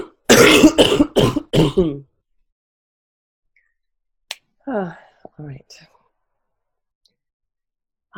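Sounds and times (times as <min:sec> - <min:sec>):
person coughing: 0:00.0 - 0:02.0
speech: 0:00.5 - 0:01.0.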